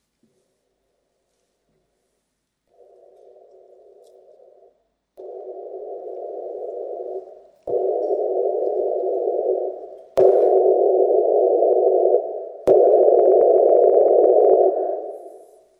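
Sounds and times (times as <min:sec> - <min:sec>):
hissing test noise stepping up in 10 dB increments: 0:03.2 - 0:15.6.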